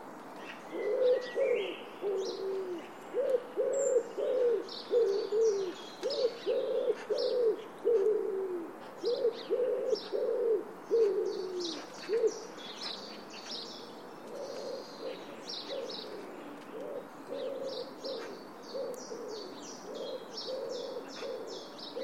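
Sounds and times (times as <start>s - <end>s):
bird repeating low hollow hooting notes: 0.7s - 12.5s, 14.3s - 22.0s.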